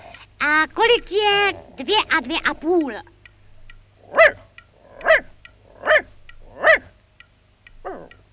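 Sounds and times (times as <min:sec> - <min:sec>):
speech: 0:00.4 - 0:03.1
dog barking to count the answer to a sum: 0:04.1 - 0:07.0, 0:07.8 - 0:08.1.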